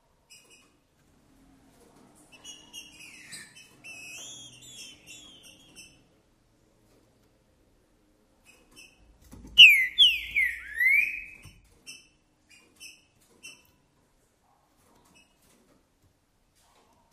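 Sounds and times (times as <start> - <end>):
Green-winged saltator singing: 3.1 - 5.9, 9.6 - 11.5.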